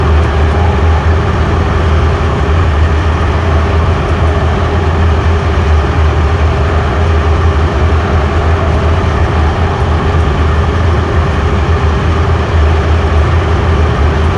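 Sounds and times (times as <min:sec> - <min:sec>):
work room shaft ambience loop: 0:00.0 - 0:14.3.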